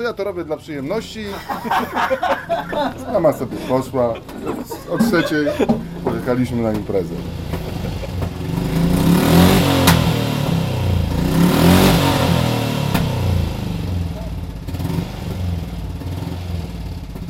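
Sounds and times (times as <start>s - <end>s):
speech: 0.0s - 7.4s
laughter: 1.2s - 8.6s
motorcycle engine idling and revving: 5.0s - 17.2s.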